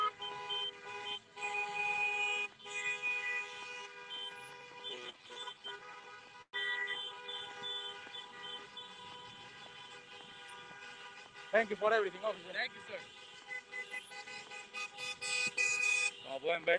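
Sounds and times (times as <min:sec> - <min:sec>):
many car horns honking from an arriving caravan of cars: 0:00.0 - 0:16.7
speech: 0:11.5 - 0:13.3, 0:16.4 - 0:16.7.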